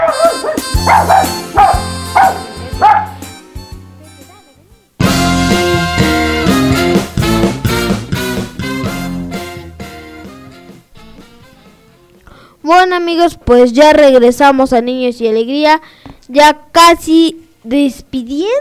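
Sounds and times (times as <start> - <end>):
small dog barking in yappy bursts: 0.0 - 3.3
bright busy music: 0.0 - 13.1
speech: 12.7 - 18.6.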